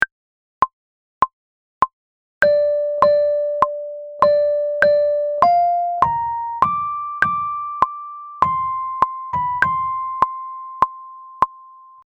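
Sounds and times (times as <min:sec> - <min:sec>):
lead melody: 0:02.4 - 0:12.0.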